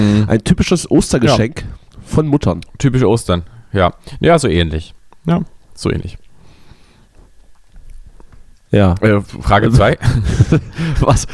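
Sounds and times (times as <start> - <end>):
speech: 0.0 - 6.2, 8.7 - 11.3
steady hiss: 0.0 - 11.3
person chewing Toblerone chocolate: 7.1 - 8.7
laughter: 9.9 - 11.3.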